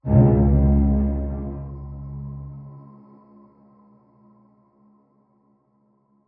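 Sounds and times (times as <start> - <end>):
drone in C sharp minor: 0.0 - 3.4.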